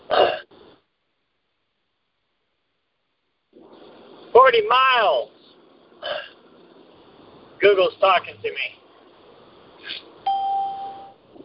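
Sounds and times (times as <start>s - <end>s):
speech: 4.4s - 5.4s, 7.6s - 8.8s
electronic doorbell chime: 10.3s - 11.2s
faint higher tone: 10.3s - 11.2s.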